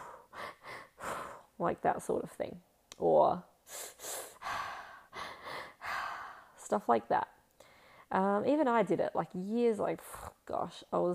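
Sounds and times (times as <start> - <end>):
person doing rhythmic runner's breathing: 0.0 - 1.6, 3.7 - 6.6
speech: 1.6 - 3.9, 6.7 - 7.4, 8.1 - 11.1.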